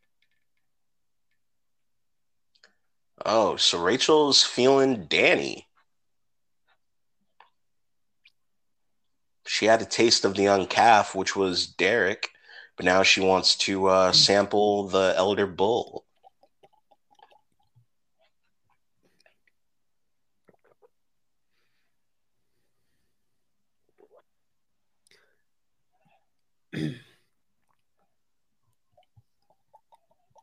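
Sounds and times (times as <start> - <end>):
speech: 3.2 - 5.7, 9.6 - 16.0
person gulping water: 14.0 - 14.6, 15.6 - 21.4, 23.7 - 30.4.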